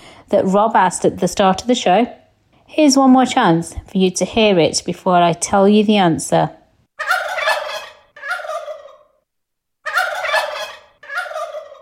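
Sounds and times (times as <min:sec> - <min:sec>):
speech: 0:00.3 - 0:06.6
turkey gobbling: 0:07.0 - 0:09.2, 0:09.8 - 0:11.7.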